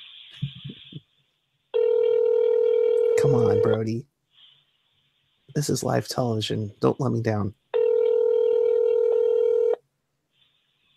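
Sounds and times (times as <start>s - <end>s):
telephone ringback tone on an outgoing call: 1.8s - 3.8s, 7.8s - 9.8s
speech: 3.2s - 4.1s, 5.6s - 7.6s.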